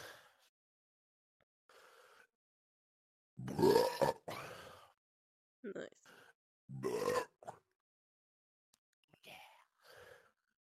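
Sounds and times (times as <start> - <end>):
loud deep burp: 3.4 - 4.4, 6.7 - 7.6
speech: 5.7 - 7.3.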